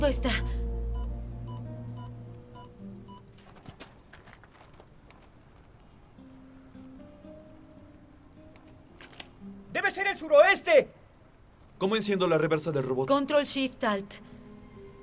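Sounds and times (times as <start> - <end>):
speech: 0.1 - 0.6, 10.2 - 11.0, 11.8 - 14.4
faint electronic alarm beeping: 0.9 - 3.2
rustling noise: 3.2 - 7.0, 8.4 - 9.6.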